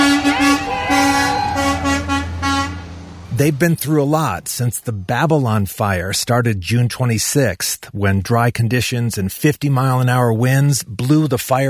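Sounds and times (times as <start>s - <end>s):
fire truck horn blasts: 0.0s - 3.4s
low fire truck engine rumble: 0.0s - 6.8s
speech: 3.4s - 11.6s.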